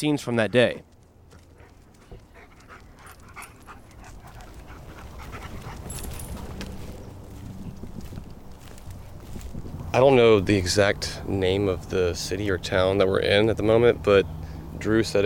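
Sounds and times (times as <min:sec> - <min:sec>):
speech: 0:00.0 - 0:00.9, 0:10.0 - 0:15.2
rustling and scuffling movement: 0:00.9 - 0:09.8
search dog panting during a search at a lake: 0:01.3 - 0:06.8.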